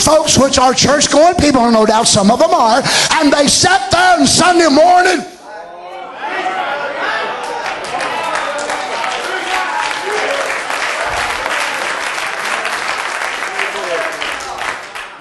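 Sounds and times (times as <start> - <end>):
speech: 0.1 - 5.3
indistinct crowd chatter: 5.4 - 15.1
large audience clapping steadily: 6.5 - 15.1.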